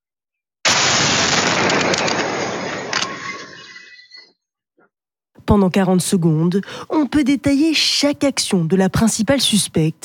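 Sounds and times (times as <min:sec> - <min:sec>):
loud explosion in filmed footage of an attack: 0:00.6 - 0:04.0
speech: 0:05.5 - 0:10.0.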